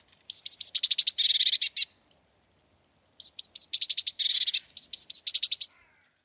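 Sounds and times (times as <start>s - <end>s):
Eurasian blue tit calls with thin downslurred notes and buzzy churring rattle: 0.0s - 2.0s, 3.2s - 6.0s.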